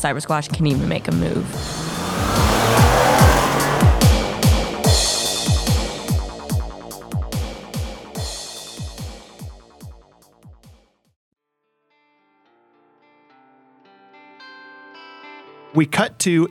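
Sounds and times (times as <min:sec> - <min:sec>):
speech: 0:00.0 - 0:02.5, 0:15.8 - 0:16.4
car engine revving hard as it speeds away: 0:00.0 - 0:06.7
long harsh car tire screech: 0:00.7 - 0:06.2.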